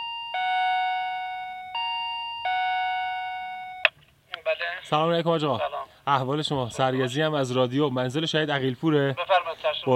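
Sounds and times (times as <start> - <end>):
house doorbell chiming electronic tones: 0.0 - 3.9
speech: 4.6 - 9.9.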